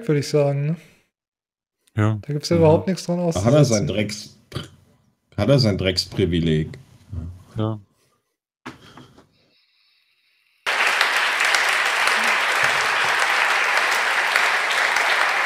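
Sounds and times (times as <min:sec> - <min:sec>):
speech: 0:00.0 - 0:00.9, 0:02.0 - 0:04.7, 0:05.4 - 0:07.9
audience applauding at a party convention: 0:10.7 - 0:15.4.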